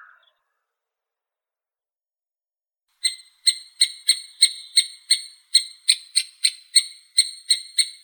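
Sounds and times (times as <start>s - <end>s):
three-toed woodpecker buzzy rattle: 3.0s - 8.0s.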